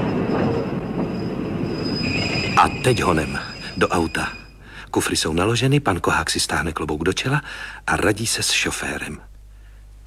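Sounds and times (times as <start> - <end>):
train pulling into a station rolling rumble: 0.0 - 7.4
faint high whine of an arriving train: 0.0 - 10.0
speech: 2.6 - 9.3.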